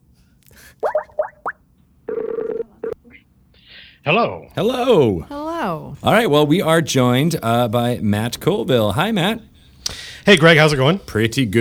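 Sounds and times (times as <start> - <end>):
short electronic phone dialing beeps: 2.1 - 3.0
steady buzzing phone ring tone: 2.1 - 3.0
speech: 4.0 - 11.6.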